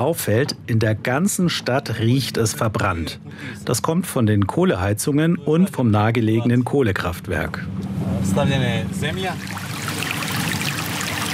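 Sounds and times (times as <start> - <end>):
speech: 0.0 - 9.6
small creek water trickling and babbling: 9.2 - 11.3.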